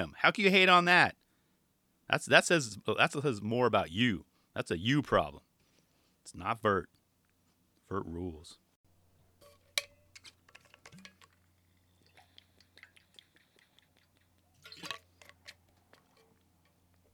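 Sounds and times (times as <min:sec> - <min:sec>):
speech: 0:00.0 - 0:01.2, 0:02.1 - 0:05.5, 0:06.3 - 0:07.0, 0:07.9 - 0:08.6
person drinking water with wet clicks and sips: 0:10.9 - 0:17.1
gulp: 0:12.1 - 0:14.4.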